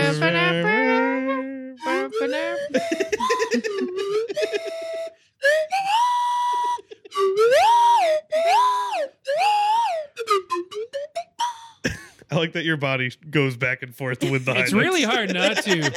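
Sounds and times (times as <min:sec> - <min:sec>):
penny whistle melody with bending, sliding pitches: 0:00.0 - 0:11.9
laughter: 0:01.9 - 0:05.1, 0:06.4 - 0:07.3, 0:14.2 - 0:15.9
speech: 0:12.5 - 0:15.9.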